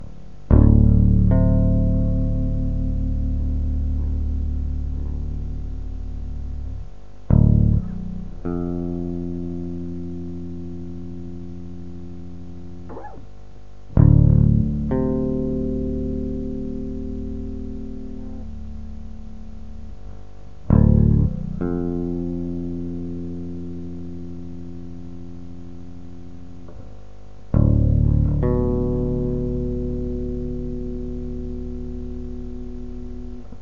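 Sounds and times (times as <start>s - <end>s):
idealized baby bass guitar: 0.0s - 33.5s.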